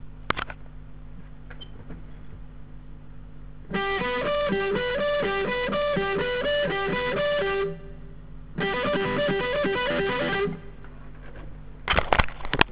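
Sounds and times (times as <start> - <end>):
guitar alternate picking: 3.7 - 10.9.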